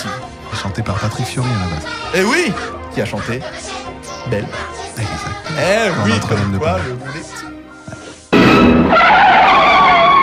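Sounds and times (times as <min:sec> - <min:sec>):
speech: 0:00.7 - 0:07.3
red car's tires squealing as it skids: 0:08.8 - 0:10.2.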